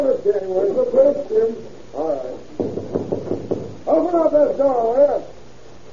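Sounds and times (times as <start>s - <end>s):
speech: 0.2s - 2.3s, 4.1s - 5.3s
sharp knocks on a door: 2.6s - 3.8s.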